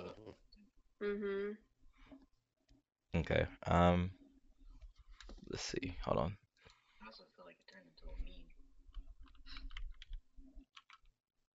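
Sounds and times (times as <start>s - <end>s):
speech: 1.0s - 1.7s, 3.2s - 4.2s, 5.5s - 6.4s
computer keyboard typing: 9.2s - 11.1s.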